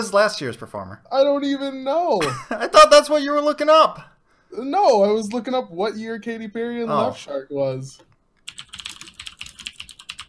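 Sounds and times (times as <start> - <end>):
speech: 0.0 - 8.1
typing on clicky mechanical keyboard with Cherry Blue switches: 8.4 - 10.2.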